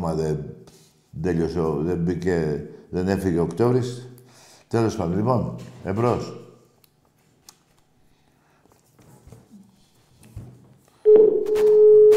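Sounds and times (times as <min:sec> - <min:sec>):
speech: 0:00.0 - 0:04.1, 0:04.7 - 0:06.4
steady loud telephone line tone on an incoming call: 0:11.0 - 0:12.1.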